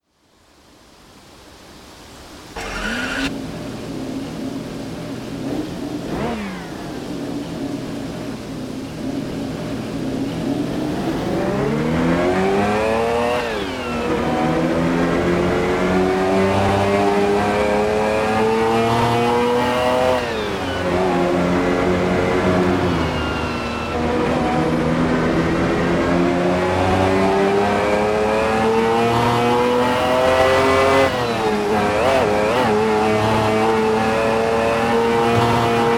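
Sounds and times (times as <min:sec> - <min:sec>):
Pagani Zonda C12S car: 0:01.8 - 0:35.9.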